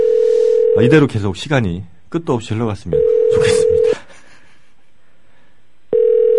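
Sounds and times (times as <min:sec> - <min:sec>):
telephone ringback tone of an unanswered call: 0:00.0 - 0:01.0, 0:03.0 - 0:04.0, 0:05.9 - 0:06.3
speech: 0:00.8 - 0:04.0.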